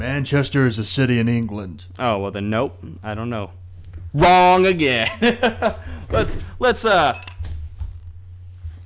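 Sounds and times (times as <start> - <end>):
speech: 0.0 - 7.3
laughter: 5.0 - 6.1
glass bottle clinking and handling noises: 7.1 - 7.4.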